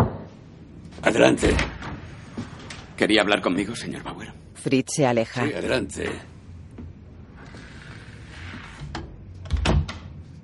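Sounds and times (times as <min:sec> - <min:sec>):
faint hum: 0:00.0 - 0:10.4
speech: 0:01.0 - 0:01.7, 0:03.0 - 0:06.3
door closing with a click and a dull low thud: 0:08.6 - 0:10.1.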